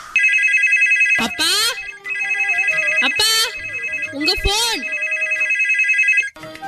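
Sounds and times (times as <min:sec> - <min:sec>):
telephone ringing with a bright electronic ringtone: 0:00.1 - 0:06.3.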